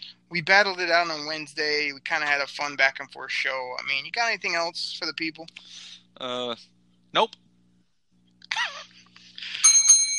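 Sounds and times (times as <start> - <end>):
speech: 0.3 - 7.4
bell dinging: 9.5 - 10.1.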